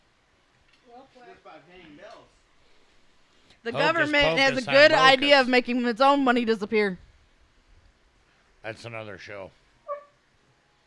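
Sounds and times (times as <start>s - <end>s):
speech: 0.9s - 2.4s, 3.6s - 7.0s, 8.6s - 9.6s
dog giving a short faint yelping bark: 9.9s - 10.2s.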